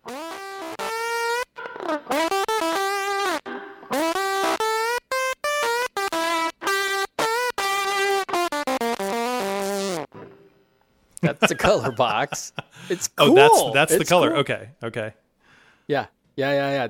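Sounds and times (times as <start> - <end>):
heavily distorted electric guitar playing sustained buzzing notes: 0.0 - 10.6
speech: 1.9 - 2.4, 11.3 - 15.2, 15.9 - 16.8
laughter: 11.2 - 14.5.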